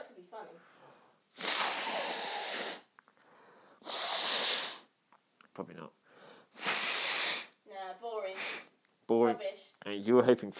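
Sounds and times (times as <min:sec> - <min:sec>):
person blowing their nose: 0:01.3 - 0:02.9, 0:03.8 - 0:04.9, 0:06.5 - 0:07.6, 0:08.3 - 0:08.7
speech: 0:09.1 - 0:10.5.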